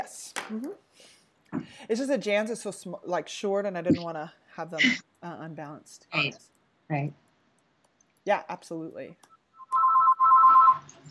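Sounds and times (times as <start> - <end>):
speech: 0.5 - 7.2, 8.2 - 9.3
telephone ringing with two electronic tones: 9.6 - 10.9.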